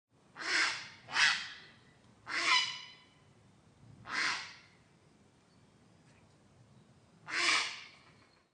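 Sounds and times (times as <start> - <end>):
grey heron calling: 0.4 - 3.2, 4.1 - 4.8, 7.3 - 8.0.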